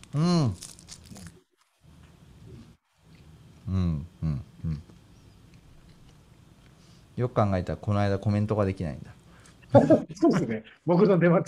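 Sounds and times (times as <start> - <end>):
crisp dried nori seaweed being bitten and eaten: 0.0 - 1.6
speech: 0.1 - 0.7, 7.2 - 11.4
laughter: 9.7 - 10.6.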